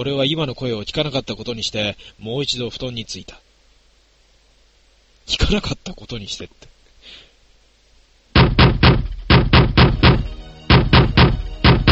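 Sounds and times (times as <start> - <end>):
speech: 0.0 - 3.4, 5.3 - 7.2
loud knocking on a door: 8.4 - 11.9.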